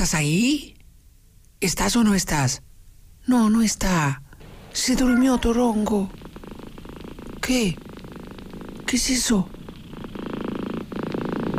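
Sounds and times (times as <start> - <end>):
speech: 0.0 - 0.8, 1.6 - 6.4, 7.5 - 7.8, 8.9 - 9.5
cat purring: 4.4 - 11.5.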